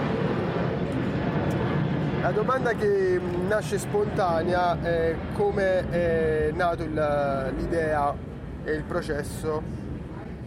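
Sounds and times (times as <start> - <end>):
airplane passing overhead: 0.0 - 10.4
speech: 2.2 - 9.8.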